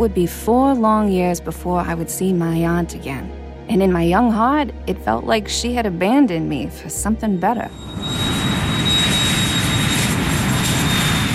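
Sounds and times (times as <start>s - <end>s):
speech: 0.0s - 8.2s
jet airplane passing overhead: 7.7s - 11.3s.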